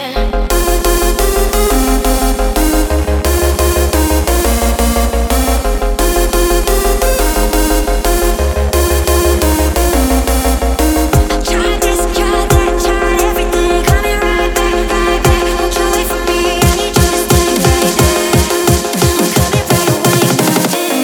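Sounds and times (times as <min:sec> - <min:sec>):
bass: 0:00.1 - 0:21.0
drums: 0:10.9 - 0:14.2, 0:15.3 - 0:21.0.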